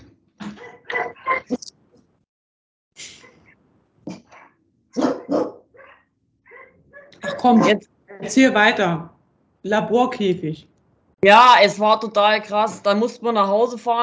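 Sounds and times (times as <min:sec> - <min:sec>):
dogs barking at an unfamiliar passing vehicle: 0:00.4 - 0:01.6, 0:04.3 - 0:08.3
speech: 0:01.0 - 0:01.7, 0:07.4 - 0:14.0.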